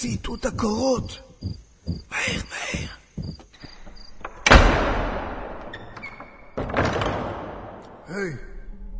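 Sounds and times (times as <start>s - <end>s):
speech: 0.0s - 3.0s, 8.1s - 8.5s
doors slamming shut to trap people inside: 4.4s - 7.9s.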